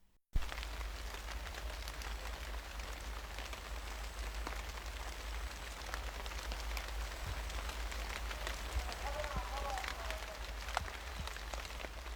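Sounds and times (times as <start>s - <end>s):
light drizzle pattering on a surface: 0.4s - 12.1s.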